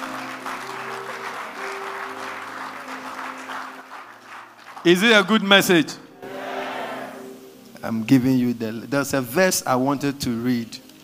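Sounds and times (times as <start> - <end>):
audience applause: 0.0 - 5.5
sustained organ-like chords: 0.0 - 10.9
speech: 4.8 - 6.0, 7.8 - 10.8.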